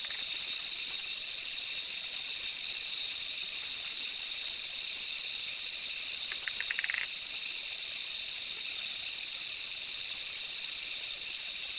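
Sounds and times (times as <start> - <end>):
Quilticohyla zoque treefrog clicking call: 0.0 - 0.4, 6.3 - 7.2
high insect chorus: 0.0 - 11.7.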